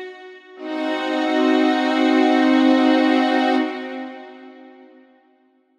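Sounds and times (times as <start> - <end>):
musical chord: 0.6 - 5.0.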